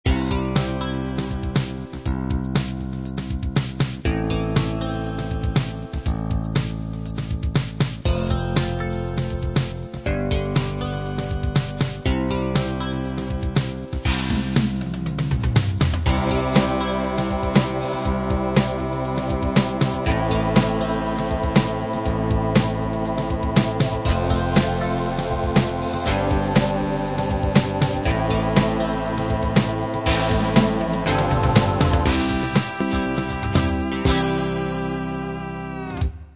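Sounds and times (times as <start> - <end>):
fatback drum groove: 0.1 - 35.3.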